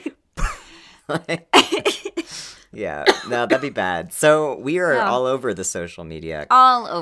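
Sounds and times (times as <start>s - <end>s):
person with a cold coughing: 0.0s - 3.8s
speech: 1.1s - 7.0s.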